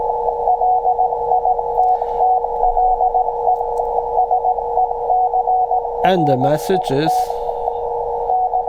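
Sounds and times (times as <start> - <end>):
low hum: 0.0 - 8.6
Morse code beeps at 375 megahertz leaked by a Raspberry Pi network link: 0.5 - 8.6
radio static: 6.0 - 7.8
speech: 6.1 - 7.4.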